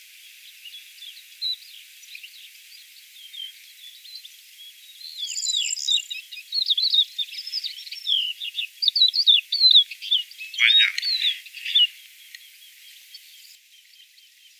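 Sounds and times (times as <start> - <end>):
crested lark song: 0.0 - 14.5.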